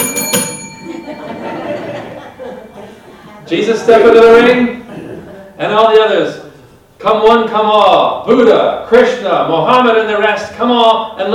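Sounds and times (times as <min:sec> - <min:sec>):
bell struck to open a contest: 0:00.0 - 0:02.8
laughter: 0:00.8 - 0:05.6
speech: 0:03.5 - 0:04.8, 0:05.6 - 0:06.4, 0:07.0 - 0:11.3.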